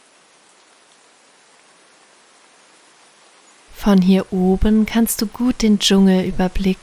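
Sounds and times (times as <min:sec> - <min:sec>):
light rain pattering on a magic carpet above the jungle: 0:00.0 - 0:06.8
speech: 0:03.8 - 0:06.8.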